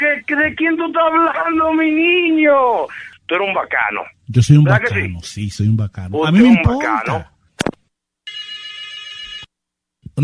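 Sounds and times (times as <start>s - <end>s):
speech: 0.3s - 7.3s
telephone ringing with an electronic trill: 8.2s - 9.5s.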